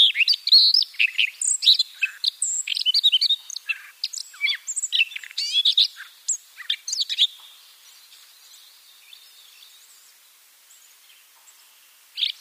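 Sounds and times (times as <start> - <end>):
Siberian rubythroat singing chirps and whistles: 0.0 - 7.4.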